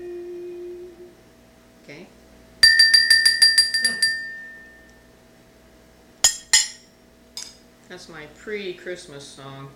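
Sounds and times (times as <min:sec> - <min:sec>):
small bell ringing: 0:02.6 - 0:05.1
speech: 0:07.9 - 0:09.7.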